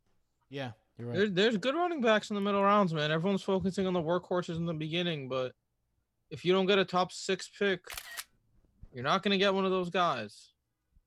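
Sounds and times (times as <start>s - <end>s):
speech: 0.5s - 5.6s, 6.3s - 8.2s, 8.9s - 10.5s
computer screenshot digital camera-shutter click: 7.9s - 8.3s.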